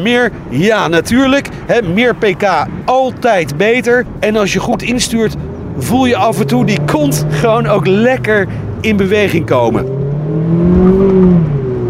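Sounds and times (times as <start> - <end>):
speech: 0.0 - 11.5
Mazda MX-5 RF sports car 2-liter four-cylinder petrol engine revving: 4.9 - 11.8.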